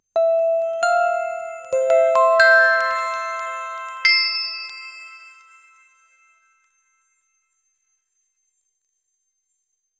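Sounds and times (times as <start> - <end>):
outro jingle: 0.2 - 5.6.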